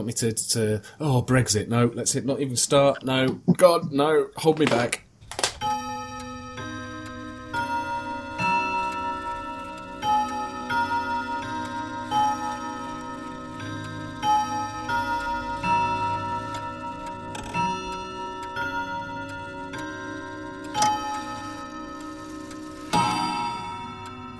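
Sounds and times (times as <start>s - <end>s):
speech: 0.0s - 5.0s
clock ticking in a news segue jingle: 2.8s - 24.3s
sustained tonal chimes in a news segue jingle: 5.2s - 24.3s.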